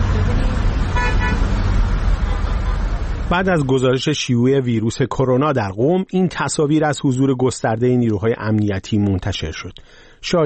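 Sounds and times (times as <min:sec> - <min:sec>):
quarantine vehicles driving by in Qom Iran during coronavirus outbreak: 0:00.0 - 0:04.0
vehicle horn honk: 0:00.9 - 0:01.5
speech: 0:03.3 - 0:10.4.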